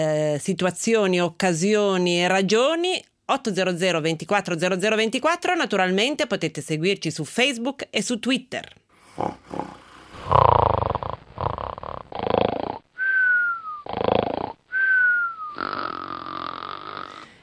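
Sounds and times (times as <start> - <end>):
speech: 0.0 - 10.6
person snoring: 9.0 - 17.4.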